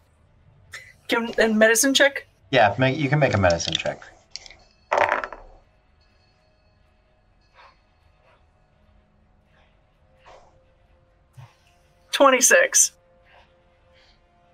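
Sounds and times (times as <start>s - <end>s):
speech: 1.1s - 4.2s, 12.2s - 13.0s
die clattering and rolling on a hard surface: 3.2s - 5.6s.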